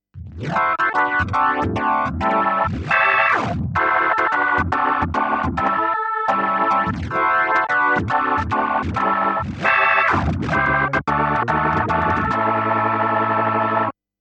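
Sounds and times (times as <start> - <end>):
B3 organ playing: 0.4 - 14.0.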